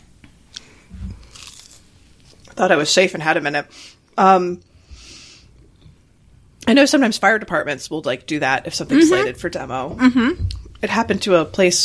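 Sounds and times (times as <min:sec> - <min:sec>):
crunchy chewing of food: 0:00.5 - 0:02.6
speech: 0:02.6 - 0:04.7, 0:06.7 - 0:11.8.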